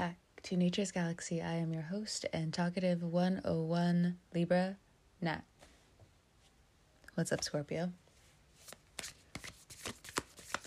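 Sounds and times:
speech: 0.0 - 5.5, 7.2 - 8.0
tarot cards being shuffled: 8.6 - 10.6.

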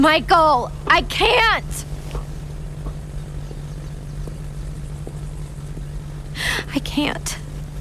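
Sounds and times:
speech: 0.0 - 1.9, 6.4 - 7.4
small propeller plane engine droning: 0.0 - 7.7.

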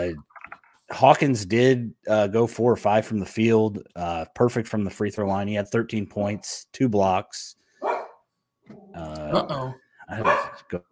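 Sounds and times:
speech: 0.0 - 0.3, 0.9 - 7.6, 8.7 - 10.9
dogs barking and yelping: 7.8 - 8.2, 10.2 - 10.8.

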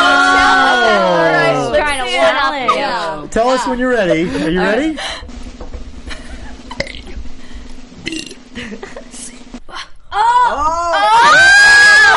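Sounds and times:
people shouting and cheering excitedly: 0.0 - 2.4, 10.1 - 12.1
speech: 3.4 - 5.4
man burping through the alphabet: 6.8 - 7.2, 8.0 - 8.4.

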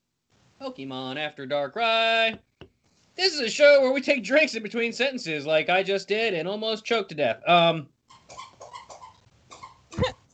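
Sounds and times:
speech: 0.6 - 2.5, 3.2 - 8.0
squeaky toy played with by a dog: 8.1 - 10.1.

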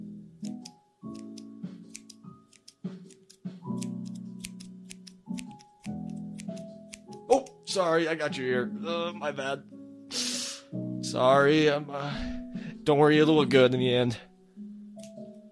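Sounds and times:
scissors trimming hair during a haircut: 0.4 - 7.7, 15.0 - 15.3
speech: 7.3 - 9.7, 11.1 - 14.3.

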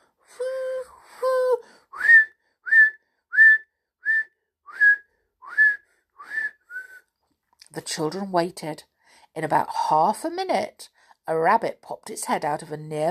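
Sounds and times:
person whistling loudly with long notes and short sharp rising whistles: 2.0 - 7.0
speech: 7.8 - 13.0.

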